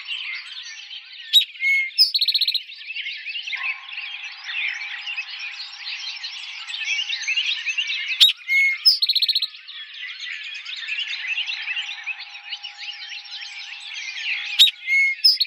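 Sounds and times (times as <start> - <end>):
dense background bird twittering: 0.0 - 15.4
Eastern towhee singing: 8.2 - 9.2, 12.3 - 15.4.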